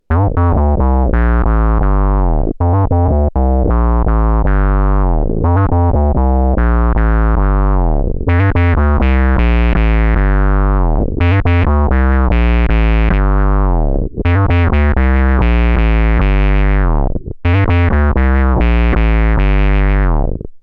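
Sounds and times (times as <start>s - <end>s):
bass guitar through Octavius Squeezer effects pedal: 0.0s - 20.6s.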